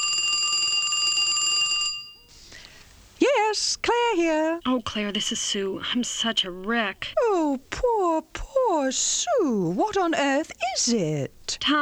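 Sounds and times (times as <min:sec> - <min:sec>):
old-fashioned telephone bell ringing for an incoming call: 0:00.0 - 0:02.4
faint hiss: 0:02.2 - 0:11.8
speech: 0:03.6 - 0:11.8.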